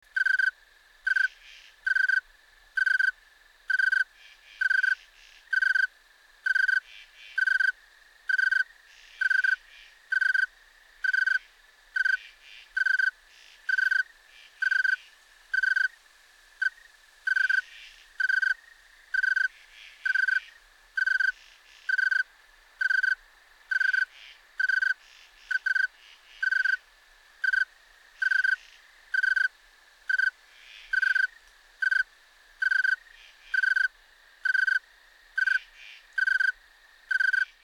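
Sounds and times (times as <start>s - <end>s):
snowy tree cricket chirping: 0.0s - 37.6s.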